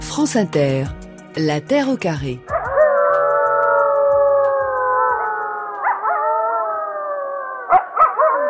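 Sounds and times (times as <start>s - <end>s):
speech: 0.1s - 2.5s
wolves howling in chorus: 2.5s - 8.4s.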